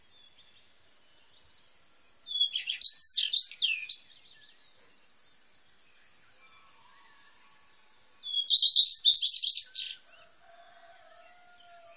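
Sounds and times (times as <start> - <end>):
Eurasian skylark song with twittering and trilled phrases: 0.0 - 4.9, 8.3 - 10.0.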